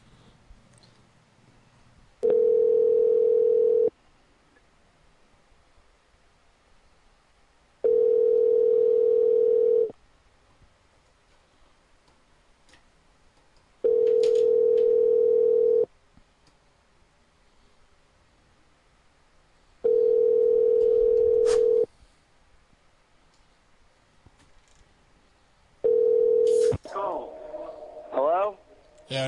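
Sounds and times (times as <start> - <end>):
telephone dial tone while placing a call back: 2.2 - 3.9, 7.8 - 9.9, 13.9 - 15.9, 19.9 - 21.9, 25.8 - 26.7.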